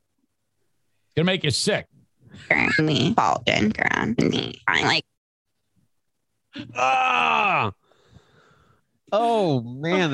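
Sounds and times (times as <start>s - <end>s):
speech: 1.2s - 5.1s, 6.5s - 7.8s, 9.1s - 10.1s
woman's vocal fry croaks spliced together: 2.6s - 5.1s.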